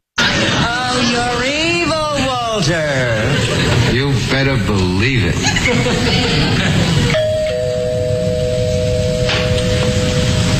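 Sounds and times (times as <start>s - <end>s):
laughter: 0.2s - 1.2s, 3.0s - 4.2s, 5.3s - 7.2s
steady hiss: 0.2s - 10.5s
speech: 4.2s - 6.8s
doorbell chime: 7.1s - 10.5s.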